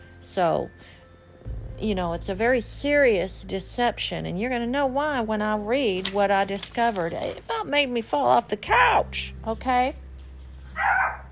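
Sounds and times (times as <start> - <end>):
speech: 0.2 - 1.0, 1.8 - 10.0
low steady hum: 0.3 - 10.7
female dog barking: 10.8 - 11.2.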